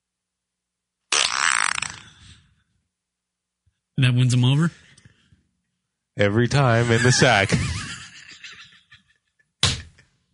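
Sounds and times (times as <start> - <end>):
fart sound from a phone app: 1.1 - 2.4
speech: 4.0 - 4.8, 6.2 - 7.8
laughter: 6.6 - 9.4.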